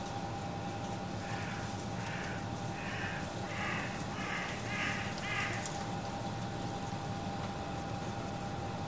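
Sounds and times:
steady hum: 0.0 - 8.8
bird calling harsh notes: 1.2 - 5.7.

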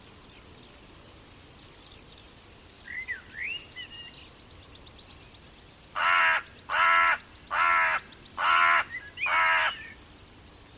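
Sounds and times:
bird giving loud harsh crow-like caws: 6.0 - 10.0.

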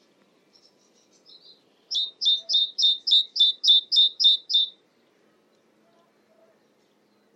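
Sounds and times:
great tit calling sharp two-part high notes: 1.2 - 4.8.

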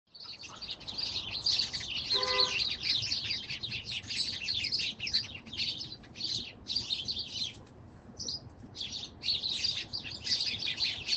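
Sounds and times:
many birds twittering: 0.1 - 11.1
low horn-like tone: 2.1 - 2.6.

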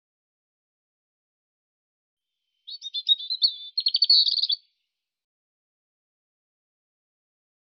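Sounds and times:
European robin singing: 2.4 - 4.8.

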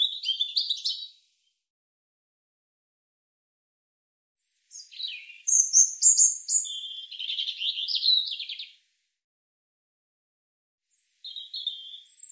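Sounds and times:
European robin song: 0.0 - 1.4, 4.5 - 8.9, 10.9 - 12.2.

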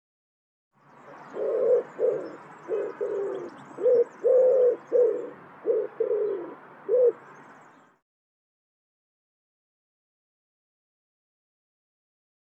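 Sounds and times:
bird cooing: 1.0 - 7.4.

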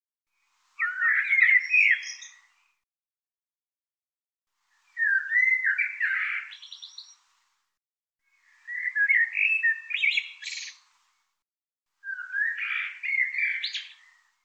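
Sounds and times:
bird twittering song: 0.3 - 2.8, 4.7 - 7.2, 8.3 - 10.9, 12.0 - 14.4.

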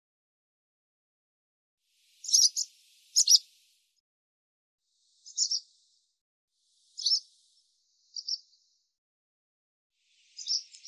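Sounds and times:
Barn swallow giving soft high twittering chirps: 2.1 - 3.8, 5.0 - 8.9, 10.1 - 10.8.

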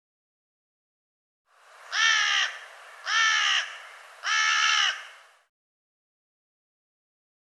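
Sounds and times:
harsh nasal caw-like bird calls: 1.8 - 5.5.

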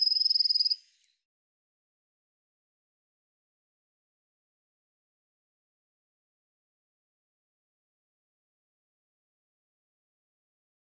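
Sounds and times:
Eurasian blue tit giving a high rapid pulsing trill: 0.0 - 0.8.

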